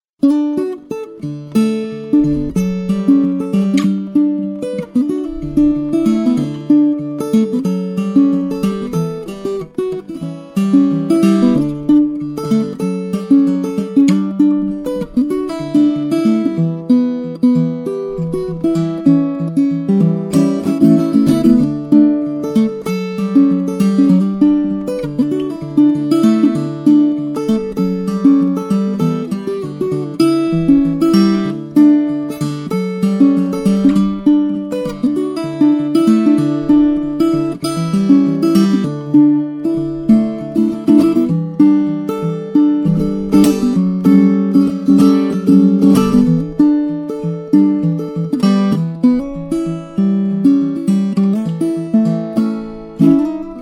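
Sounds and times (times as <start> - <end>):
ukulele song: 0.2 - 53.6.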